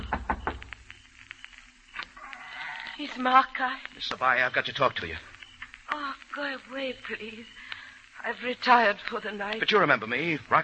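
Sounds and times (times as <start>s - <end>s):
knocking on the door of a house in the hills outside town at night: 0.0s - 0.6s
speech: 3.0s - 5.3s, 6.0s - 10.6s.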